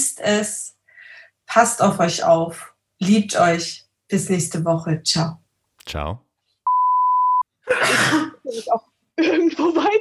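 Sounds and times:
speech: 0:00.2 - 0:00.8, 0:01.5 - 0:06.2, 0:08.5 - 0:10.0
steady electronic beep: 0:06.7 - 0:07.4.

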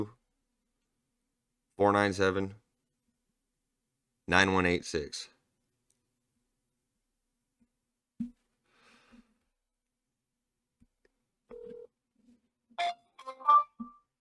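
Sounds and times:
speech: 0:01.8 - 0:02.6, 0:04.3 - 0:05.3
telephone tones on a dialed call to a number no longer in service: 0:11.5 - 0:12.0.

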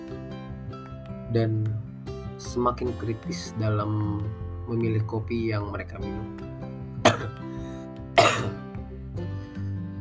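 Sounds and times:
speech: 0:01.3 - 0:06.6
person coughing: 0:07.0 - 0:07.4, 0:08.2 - 0:08.6.

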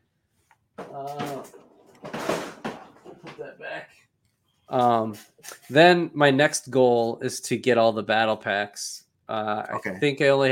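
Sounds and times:
speech: 0:01.0 - 0:01.6, 0:03.3 - 0:04.1, 0:04.7 - 0:10.5
drawer full of toy sets sliding open with a scraping rush: 0:01.2 - 0:03.3.

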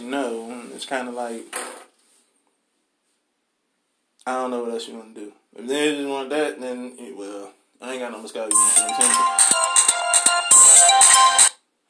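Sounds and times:
speech: 0:00.2 - 0:01.7, 0:04.2 - 0:10.2
loud electronic phone ringtone: 0:08.5 - 0:11.6.

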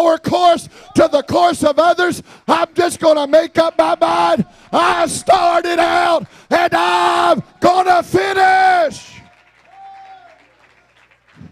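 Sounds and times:
speech: 0:00.0 - 0:09.1
congregation clapping: 0:02.9 - 0:05.6, 0:08.8 - 0:11.5.

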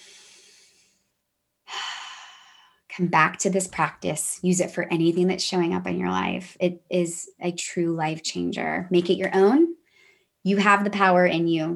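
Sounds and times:
loud airy deep breath in: 0:00.0 - 0:01.1, 0:01.7 - 0:02.8, 0:09.8 - 0:10.4
soft breath: 0:00.0 - 0:01.1, 0:01.7 - 0:02.8
speech: 0:03.0 - 0:09.8, 0:10.4 - 0:11.7.

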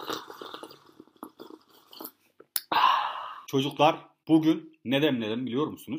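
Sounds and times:
person sipping hot tea: 0:00.0 - 0:03.5
satisfied exhale: 0:02.6 - 0:03.5
speech: 0:03.5 - 0:05.9.

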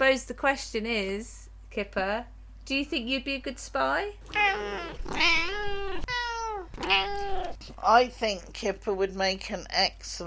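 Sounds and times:
speech: 0:00.1 - 0:05.4, 0:07.7 - 0:10.2
male cat meowing: 0:04.2 - 0:07.6.

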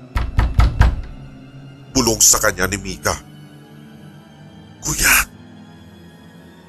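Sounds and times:
heavy knocking on an apartment door: 0:00.0 - 0:01.4
speech: 0:02.0 - 0:03.3.

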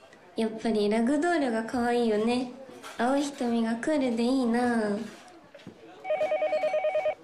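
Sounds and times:
speech: 0:00.4 - 0:05.2
phone ringing with a rapid trilling electronic tone: 0:06.0 - 0:07.2.

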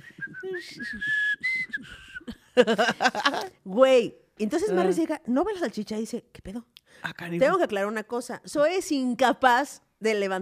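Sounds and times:
person whistling a casual tuneful melody: 0:00.0 - 0:02.4
speech: 0:00.5 - 0:01.6, 0:02.6 - 0:10.4
person laughing: 0:01.8 - 0:03.5.

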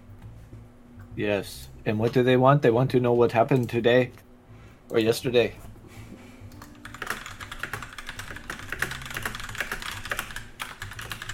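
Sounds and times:
speech: 0:01.2 - 0:04.2, 0:04.9 - 0:05.6
typing on a computer keyboard: 0:06.6 - 0:11.3.

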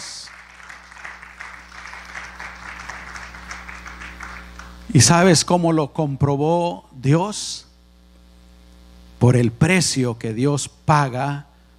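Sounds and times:
congregation applauding: 0:00.0 - 0:04.9
low steady hum: 0:00.0 - 0:11.7
speech: 0:04.9 - 0:07.7, 0:09.2 - 0:11.5.

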